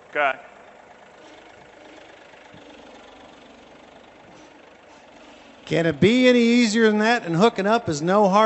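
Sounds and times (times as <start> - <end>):
John Deere tractor engine idling: 0.0 - 8.4
speech: 0.1 - 0.5, 5.7 - 8.4.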